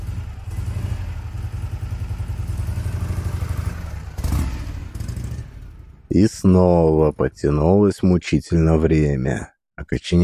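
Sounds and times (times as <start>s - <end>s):
motorcycle engine running with a low chug and clatter: 0.0s - 6.1s
speech: 6.1s - 10.2s.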